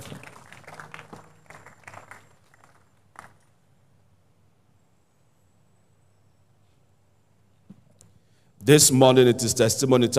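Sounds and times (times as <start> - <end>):
crowd clapping in a large room: 0.0 - 3.5
speech: 8.7 - 10.1.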